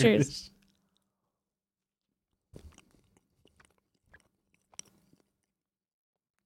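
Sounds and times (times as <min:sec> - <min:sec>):
person chewing food with mouth clicks and crunches: 0:00.6 - 0:01.3, 0:02.0 - 0:05.7.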